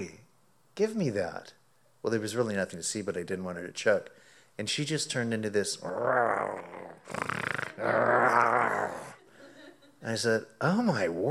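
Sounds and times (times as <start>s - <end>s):
speech: 0.8s - 9.1s, 10.0s - 11.3s
person imitating an angry pet dog's growl: 5.8s - 9.2s.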